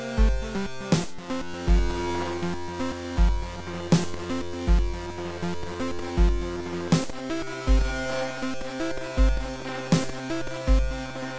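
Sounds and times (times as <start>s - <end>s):
battle music: 0.2s - 2.1s, 3.2s - 5.1s, 5.8s - 8.0s, 9.2s - 11.1s.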